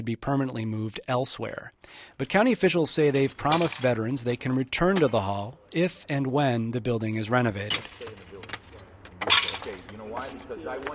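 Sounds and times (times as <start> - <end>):
speech: 0.0 - 8.2, 10.1 - 10.9
people talking quietly: 0.0 - 10.9
broken glass shards from photo frames clinking and scraping as gathered up: 3.0 - 4.2, 7.6 - 10.5.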